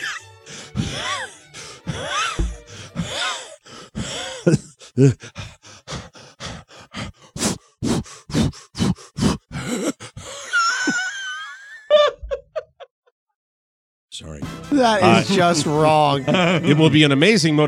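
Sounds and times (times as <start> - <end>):
man imitating a runner's heavy breathing: 0.4 - 10.6
speech: 4.4 - 5.4, 14.8 - 17.6
laughter: 10.4 - 12.9, 14.8 - 17.6.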